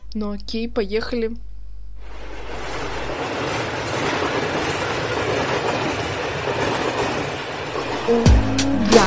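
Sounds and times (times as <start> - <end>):
speech: 0.1 - 1.5, 8.1 - 8.5
train rumbling along rails: 2.0 - 9.0.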